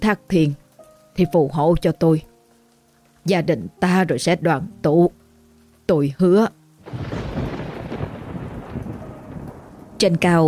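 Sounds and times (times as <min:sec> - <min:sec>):
speech: 0:00.0 - 0:00.6, 0:01.2 - 0:02.3, 0:03.2 - 0:05.2, 0:05.9 - 0:07.1, 0:10.0 - 0:10.4
steady rain hiss: 0:00.0 - 0:10.4
thunder rumbling in a storm: 0:06.8 - 0:10.4.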